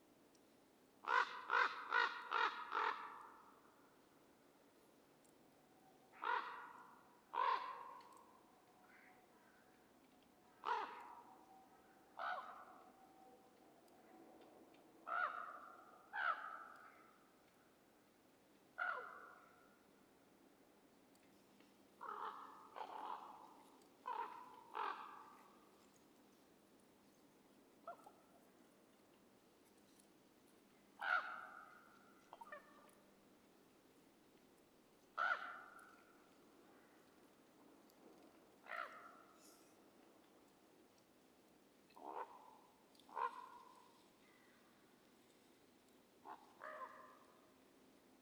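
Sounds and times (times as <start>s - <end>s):
Corvus corax: 1.0s - 3.6s, 6.1s - 9.7s, 10.6s - 13.4s, 15.0s - 17.3s, 18.8s - 19.8s, 22.0s - 26.0s, 31.0s - 33.0s, 35.2s - 37.3s, 38.2s - 39.8s, 41.9s - 44.7s, 46.2s - 47.5s.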